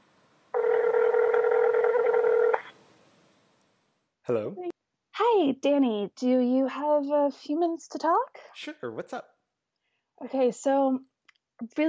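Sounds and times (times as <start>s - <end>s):
electronic telephone tone of an outgoing phone call: 0.5s - 2.7s
speech: 4.3s - 4.7s, 5.3s - 9.3s, 10.2s - 11.8s.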